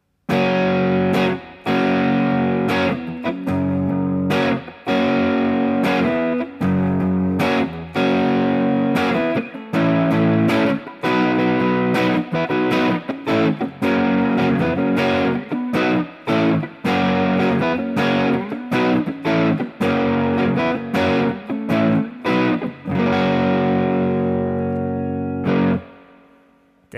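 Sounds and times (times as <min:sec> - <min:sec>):
heavily distorted electric guitar chords with Les Paul tone: 0:00.3 - 0:26.3.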